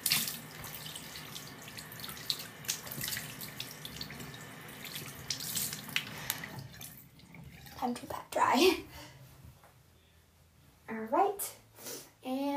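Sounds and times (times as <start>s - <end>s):
faucet running: 0.0s - 8.1s
water splashing as hands rinse a face: 0.0s - 8.1s
speech: 7.8s - 8.9s.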